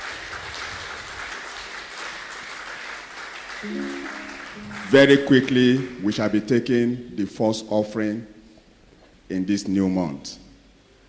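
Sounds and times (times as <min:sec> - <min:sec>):
large crowd applauding: 0:00.0 - 0:06.4
sustained organ or keyboard tone: 0:03.6 - 0:05.7
speech: 0:03.6 - 0:08.3, 0:09.3 - 0:10.4.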